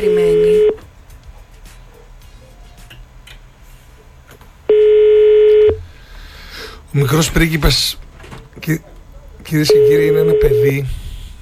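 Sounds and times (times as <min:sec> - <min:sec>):
telephone ringing tone: 0:00.0 - 0:00.8, 0:04.7 - 0:05.8, 0:09.7 - 0:10.8
faint noise: 0:00.0 - 0:11.4
speech: 0:07.0 - 0:08.0, 0:08.7 - 0:08.9, 0:09.5 - 0:11.0.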